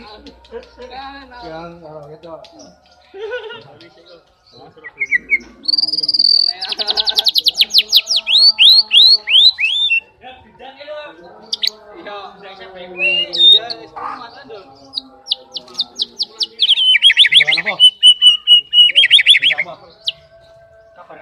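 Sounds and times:
Oriental magpie-robin song: 0:00.0 - 0:21.2
laughter: 0:03.0 - 0:04.1, 0:06.4 - 0:07.8.

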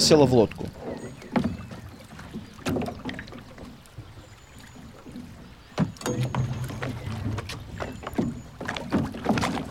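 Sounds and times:
oar rowing a boat splashing in water: 0:00.0 - 0:09.6.

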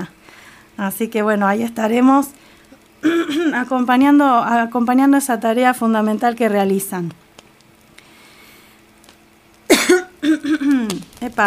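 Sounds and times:
speech: 0:00.8 - 0:02.4, 0:03.0 - 0:07.2, 0:10.8 - 0:11.4
harsh human coughing: 0:03.0 - 0:03.7, 0:09.7 - 0:11.0.

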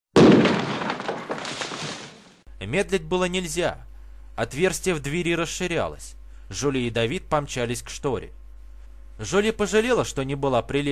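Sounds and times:
tear gas grenade exploding on a floor: 0:00.2 - 0:02.4
speech: 0:02.6 - 0:08.4, 0:09.2 - 0:10.9.

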